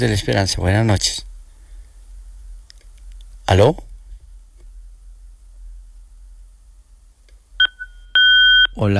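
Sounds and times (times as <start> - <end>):
speech: 0.0 - 1.3, 3.5 - 3.9, 8.8 - 8.9
constant low hum: 0.0 - 8.9
electronic telephone-line beep signalling an incoming call: 7.6 - 8.7.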